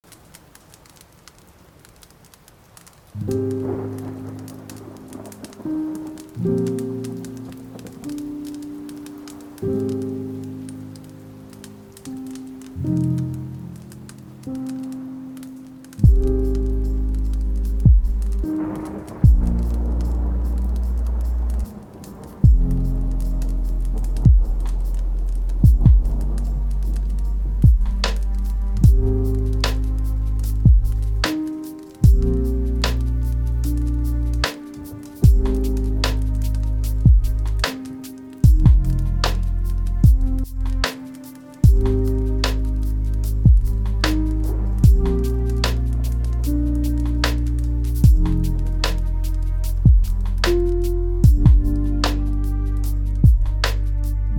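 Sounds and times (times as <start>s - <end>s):
thunderstorm: 3.3s - 10.0s, 16.0s - 40.8s, 41.6s - 54.2s
lofi hip hop beat: 16.0s - 54.2s.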